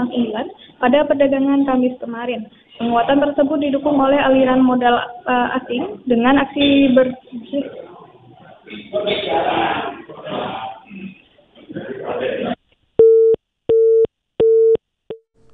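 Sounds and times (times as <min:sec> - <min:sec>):
speech: 0:00.0 - 0:07.9, 0:08.7 - 0:11.1
telephone busy tone from a failed phone connection: 0:13.0 - 0:15.2.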